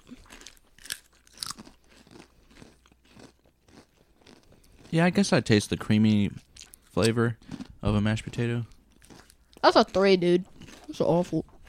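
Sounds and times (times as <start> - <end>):
crunching garlic mashed potato flavored potato chips: 0.0 - 5.3, 7.4 - 9.6, 10.4 - 11.6
soft continuous chewing: 0.0 - 5.3, 6.3 - 11.6
speech: 4.9 - 6.4, 7.0 - 8.7, 9.6 - 11.5.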